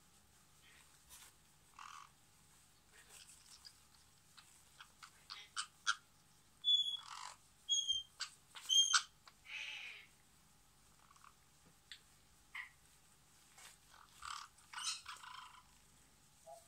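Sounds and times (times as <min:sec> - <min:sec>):
parrot chattering with harsh squawks, clicks and short high whistles: 0:00.6 - 0:02.2, 0:03.1 - 0:10.2, 0:10.9 - 0:11.4, 0:12.5 - 0:12.8, 0:13.9 - 0:15.8.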